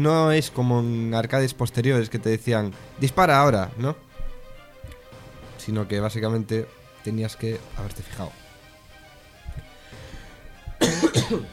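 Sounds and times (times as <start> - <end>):
speech: 0.0 - 4.1, 5.6 - 8.4, 11.3 - 11.5
harsh coughs: 10.8 - 11.5.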